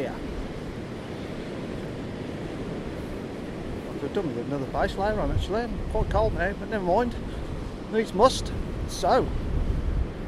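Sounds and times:
strong gale wind buffeting the microphone at a grey cold seaside bay: 0:00.0 - 0:10.2
speech: 0:04.0 - 0:09.4.

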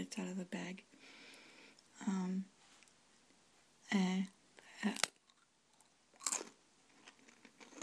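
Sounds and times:
speech: 0:00.1 - 0:00.9
thin crisp triangle-shaped seaweed cookie being chewed: 0:04.8 - 0:07.8.

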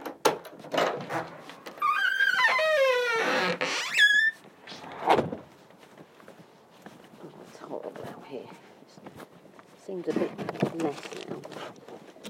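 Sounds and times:
squeaky door creaking open with wavering squeal: 0:00.0 - 0:05.4
rustle: 0:03.8 - 0:12.2
speech: 0:10.0 - 0:11.9.

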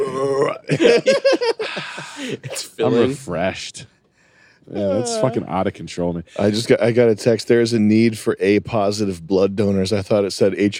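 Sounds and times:
loud drawn-out burp: 0:00.0 - 0:00.8
laughter: 0:00.6 - 0:02.8
speech: 0:00.7 - 0:04.0, 0:04.7 - 0:10.7.

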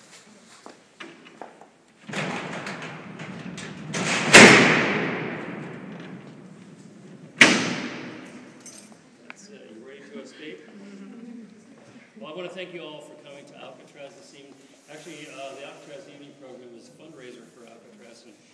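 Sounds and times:
heavy steel prison cell doors rumbling along: 0:02.0 - 0:08.6
faint murmuring: 0:09.0 - 0:18.4
speech: 0:12.4 - 0:13.1.

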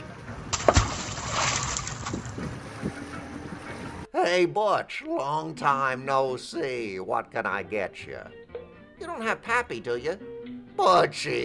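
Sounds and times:
river water sloshing and churning: 0:00.2 - 0:02.8
person jumping overboard splashing into river: 0:00.5 - 0:02.4
speech: 0:04.3 - 0:08.4, 0:09.0 - 0:11.4.

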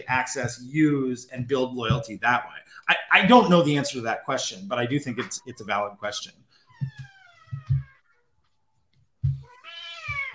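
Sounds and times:
speech: 0:00.0 - 0:07.1
cat meowing: 0:06.7 - 0:08.2, 0:09.4 - 0:10.3.

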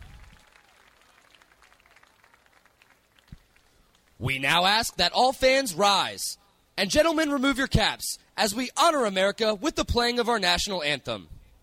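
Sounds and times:
large crowd applauding: 0:00.0 - 0:04.2
speech: 0:04.2 - 0:11.4.

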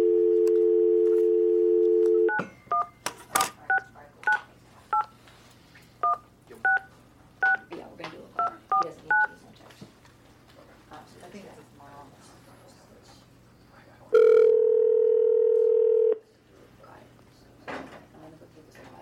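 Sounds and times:
telephone dial tone: 0:00.0 - 0:02.4, 0:14.2 - 0:16.2
dual-tone phone keypad beeps: 0:01.8 - 0:02.9, 0:06.0 - 0:07.7, 0:08.4 - 0:09.3.

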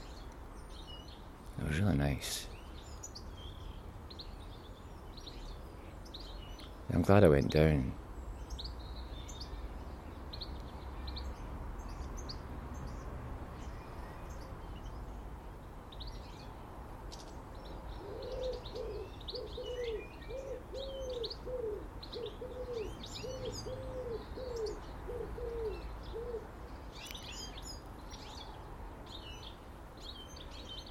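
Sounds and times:
small birds chirping and twittering: 0:00.0 - 0:30.8
steady outdoor ambience: 0:00.0 - 0:30.8
speech: 0:01.7 - 0:02.5, 0:06.9 - 0:08.0
dove cooing: 0:18.0 - 0:26.5.

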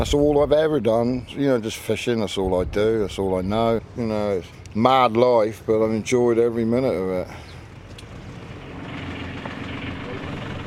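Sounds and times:
speech: 0:00.0 - 0:07.5
fishing boat engine idling in the inner harbour of Mevagissey Cornwall UK: 0:06.4 - 0:10.6.

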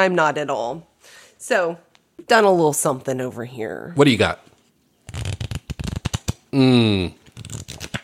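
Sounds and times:
speech: 0:00.0 - 0:04.5, 0:06.5 - 0:07.7
deck of playing cards being shuffled: 0:05.1 - 0:06.5, 0:07.1 - 0:08.0.

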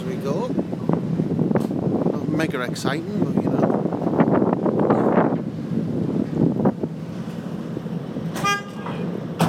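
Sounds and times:
low traffic rumble on a bridge over a river: 0:00.0 - 0:09.4
wind buffeting on a bridge over a river: 0:00.0 - 0:09.4
speech: 0:02.4 - 0:03.4
short car horn honk on a bridge over a river: 0:08.3 - 0:09.1.

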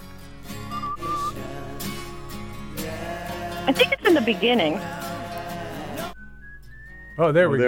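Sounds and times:
whistled melody: 0:00.5 - 0:02.6, 0:06.1 - 0:07.6
speech: 0:03.7 - 0:05.0, 0:07.2 - 0:07.6.

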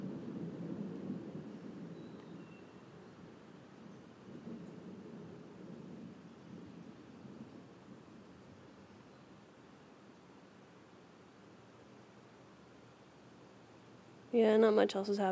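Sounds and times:
rolling thunder rumbling in a thunderstorm: 0:00.0 - 0:09.4
rain: 0:00.0 - 0:15.3
speech: 0:14.3 - 0:15.3.

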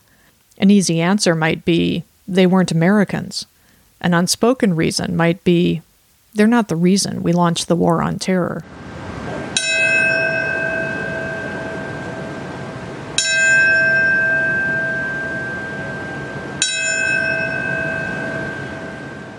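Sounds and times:
soft hiss: 0:00.0 - 0:19.3
speech: 0:00.6 - 0:08.8
memorial bell tolling: 0:09.4 - 0:19.3.

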